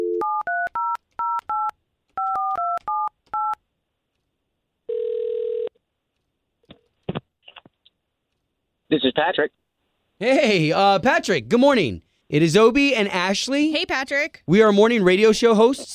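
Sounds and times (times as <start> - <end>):
long steady telephone tone: 0.0 - 3.6, 4.9 - 5.8
speech: 8.9 - 9.6, 10.2 - 15.9.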